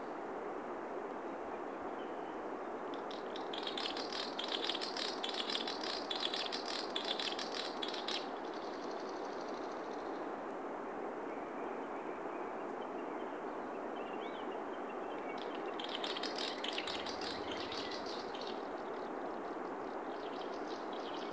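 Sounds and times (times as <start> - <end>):
background hiss: 0.0 - 21.3
Swinhoe's snipe Gallinago megala rattling call: 2.9 - 8.7, 15.4 - 18.7.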